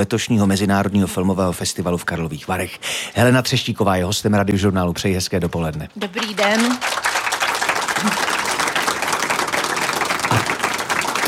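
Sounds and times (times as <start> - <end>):
speech: 0.0 - 7.0
outdoor crowd applauding: 6.0 - 11.2.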